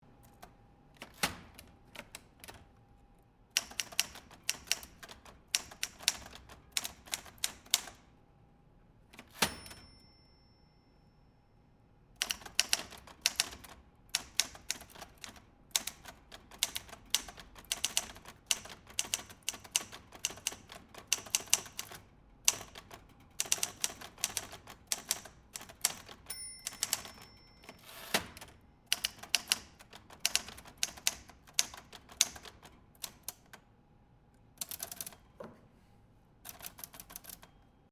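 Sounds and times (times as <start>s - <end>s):
mechanical typewriter typing: 0.2s - 2.6s, 3.6s - 8.0s, 12.2s - 33.5s, 34.6s - 35.2s, 36.5s - 37.6s.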